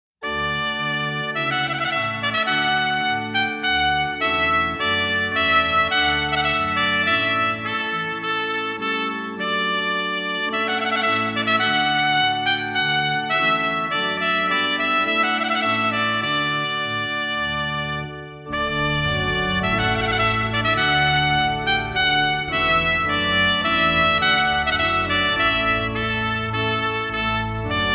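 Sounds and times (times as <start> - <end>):
organ trumpet: 0.2 - 27.9.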